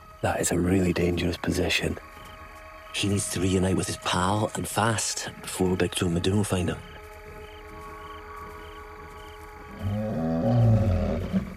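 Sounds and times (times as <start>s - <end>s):
speech: 0.2s - 2.2s, 2.9s - 7.0s
male lion low grumbling vocalization: 9.8s - 11.5s.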